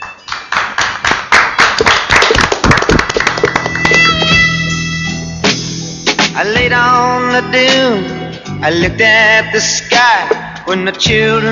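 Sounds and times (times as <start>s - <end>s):
crowd applauding: 0.0s - 4.8s
speech: 6.4s - 11.5s.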